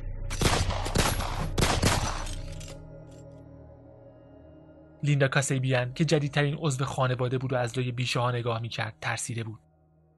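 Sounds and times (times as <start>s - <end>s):
loud gunshots with booming echo: 0.3s - 2.5s
speech: 5.0s - 9.7s.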